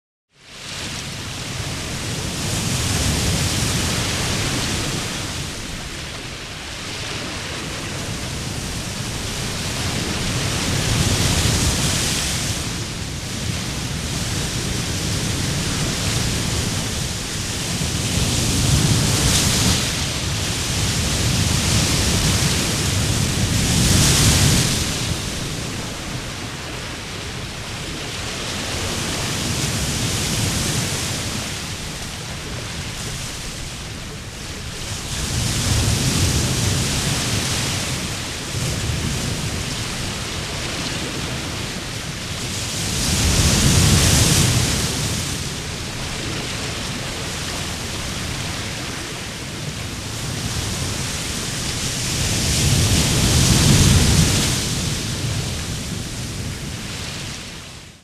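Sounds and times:
murmuring sea waves: 0:00.5 - 0:58.0.

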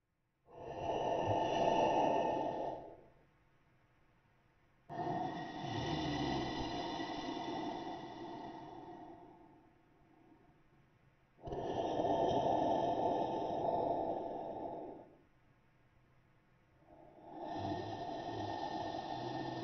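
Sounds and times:
monster breathing while sleeping: 0:00.5 - 0:03.1, 0:04.9 - 0:09.7, 0:11.4 - 0:15.2, 0:16.9 - 0:19.6.

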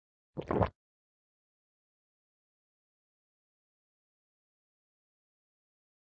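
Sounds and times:
person drinking water: 0:00.4 - 0:00.7
person swallowing food: 0:00.4 - 0:00.7.

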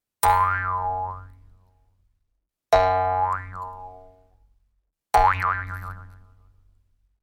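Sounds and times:
cartoon spring bounce: 0:00.2 - 0:01.3, 0:02.8 - 0:04.1.

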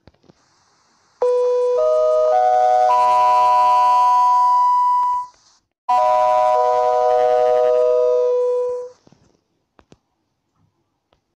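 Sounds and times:
information notification bell: 0:01.2 - 0:05.3, 0:05.9 - 0:08.9.

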